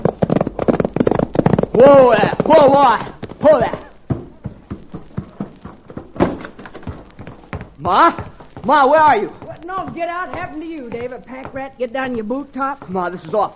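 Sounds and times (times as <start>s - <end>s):
pony hooves galloping: 0.0s - 13.5s
speech: 1.9s - 3.8s, 7.8s - 13.5s.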